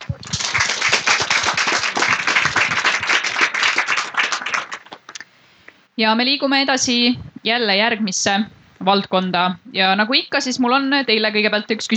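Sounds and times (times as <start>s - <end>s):
room full of people applauding: 0.0s - 5.2s
speech: 6.0s - 11.9s.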